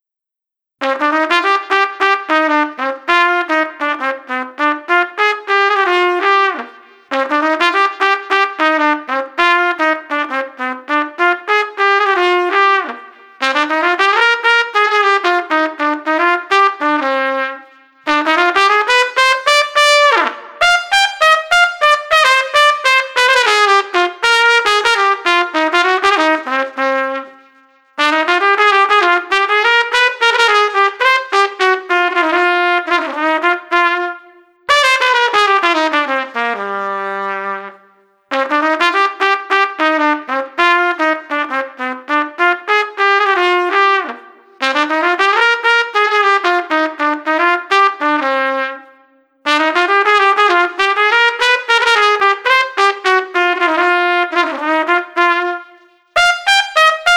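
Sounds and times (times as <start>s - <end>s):
street trumpet playing mellow swing: 0.8s - 48.9s, 49.5s - 57.1s.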